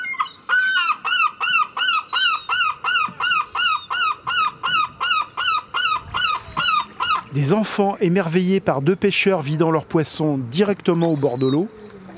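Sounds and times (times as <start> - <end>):
seagull calling with harsh cries: 0.0 - 7.8, 10.9 - 12.1
speech: 7.4 - 11.8.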